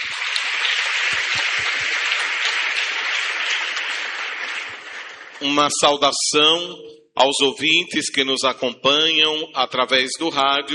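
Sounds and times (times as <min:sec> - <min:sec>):
church audience applauding at a parish Mass: 0:00.0 - 0:05.8
speech: 0:05.4 - 0:10.7.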